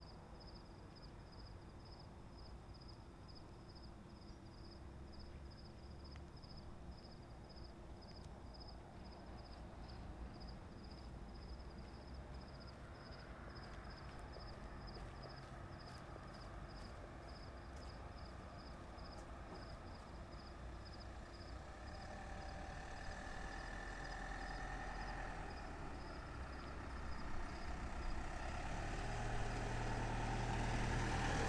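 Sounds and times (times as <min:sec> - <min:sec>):
crickets chirping at night: 0:00.4 - 0:31.4
pickup truck passing at night in the northwest: 0:13.2 - 0:31.4.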